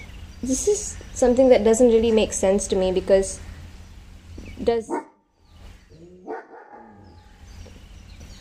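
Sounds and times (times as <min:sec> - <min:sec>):
low rumble: 0:00.0 - 0:08.3
speech: 0:00.4 - 0:03.5, 0:04.6 - 0:05.1
dog barking: 0:04.9 - 0:05.2, 0:06.2 - 0:07.3.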